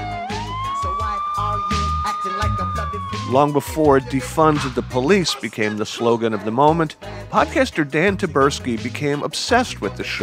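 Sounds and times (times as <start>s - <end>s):
police car siren wailing: 0.0s - 5.9s
punchy rhythmic beats: 0.0s - 10.2s
speech: 3.3s - 10.2s.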